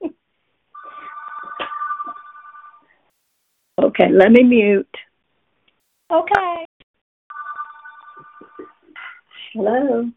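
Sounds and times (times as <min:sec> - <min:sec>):
phone ringing with a steady electronic tone: 0:00.8 - 0:02.9, 0:07.3 - 0:08.8
speech: 0:03.8 - 0:05.0, 0:06.1 - 0:06.6, 0:09.6 - 0:10.1.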